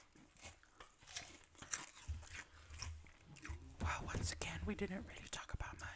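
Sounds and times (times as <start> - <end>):
crunching bites of bread knots: 0.0 - 3.8
speech: 4.0 - 5.4.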